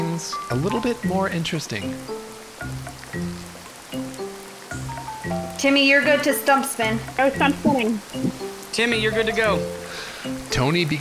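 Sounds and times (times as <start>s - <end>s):
low melodic tonal pattern: 0.0s - 10.8s
heavy rain in a storm: 0.0s - 10.9s
speech: 0.2s - 3.5s, 5.6s - 10.9s
blustery wind in a storm: 5.7s - 8.7s.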